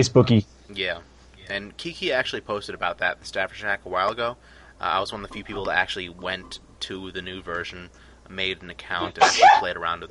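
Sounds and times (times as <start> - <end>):
speech: 0.0 - 10.0
quick sharp sneeze: 9.0 - 9.7.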